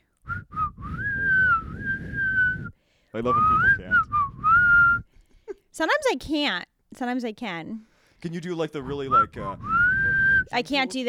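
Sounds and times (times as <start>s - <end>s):
person whistling: 0.2s - 5.2s, 8.8s - 10.6s
speech: 3.1s - 4.2s, 5.8s - 9.8s, 10.5s - 11.0s.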